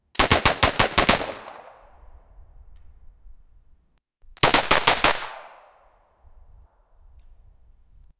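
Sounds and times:
realistic Glock 19 pistol: 0.2 - 2.2, 4.4 - 6.0.

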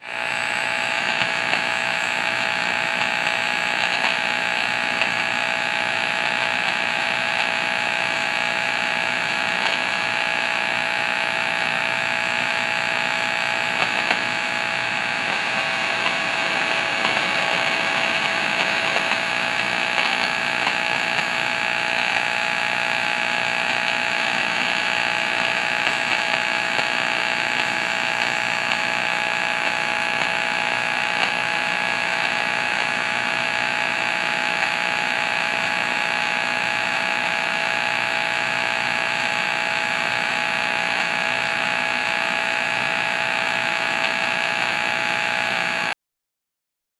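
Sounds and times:
creepy old TV buzz: 0.0 - 46.0.

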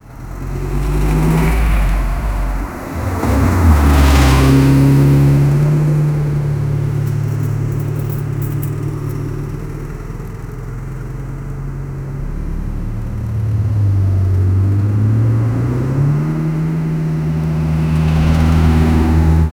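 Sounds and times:
convoy of old cars: 0.0 - 19.5.

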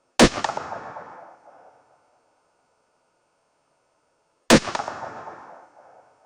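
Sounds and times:
AK47 gunshot: 0.2 - 1.8, 4.5 - 6.1.

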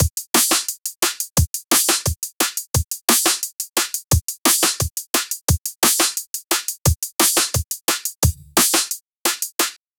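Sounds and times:
drum loop: 0.0 - 9.9
bass: 8.2 - 8.9.

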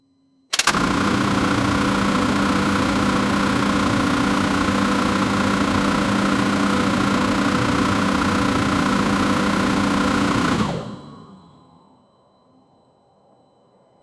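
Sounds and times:
machine engine initial start: 0.5 - 11.2.

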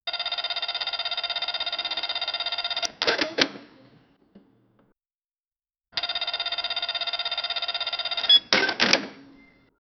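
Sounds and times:
cash register ka-ching: 0.1 - 3.9, 6.0 - 9.7.

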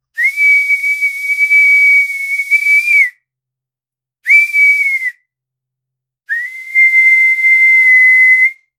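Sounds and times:
whistle blowing: 0.2 - 3.2, 4.3 - 5.3, 6.3 - 8.7.

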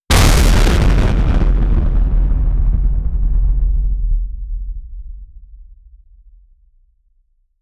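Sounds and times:
bass boosted nuclear explosion: 0.1 - 5.9.

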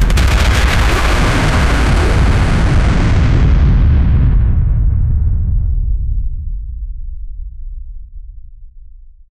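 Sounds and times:
rocket launch: 0.0 - 6.2.

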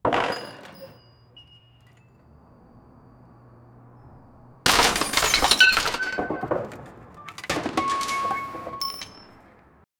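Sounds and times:
tin crashing: 4.6 - 9.5.

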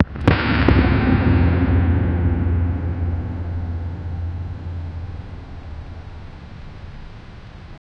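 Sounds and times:
metal bending: 0.0 - 7.7
low booming building collapse: 0.0 - 7.8.

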